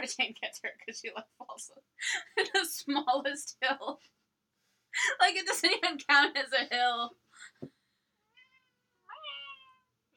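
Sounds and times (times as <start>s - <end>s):
speech: 0.0s - 4.2s, 5.0s - 7.8s
cat meowing: 8.3s - 9.9s.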